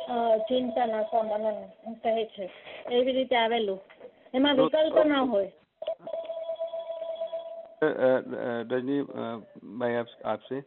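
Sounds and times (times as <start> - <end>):
mobile phone ringing: 0.0 - 1.8, 5.8 - 7.8
speech: 0.1 - 5.6, 7.8 - 10.6.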